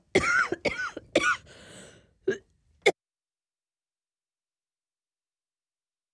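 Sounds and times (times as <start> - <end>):
person coughing: 0.1 - 1.5.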